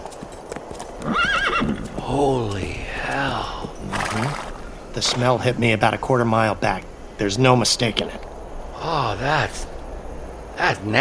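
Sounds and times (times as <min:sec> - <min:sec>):
hollow hoof clops on hard ground: 0:00.0 - 0:06.9
horse whinnying: 0:01.0 - 0:02.0
speech: 0:02.2 - 0:02.8, 0:05.0 - 0:08.3, 0:08.9 - 0:09.7, 0:10.7 - 0:10.9.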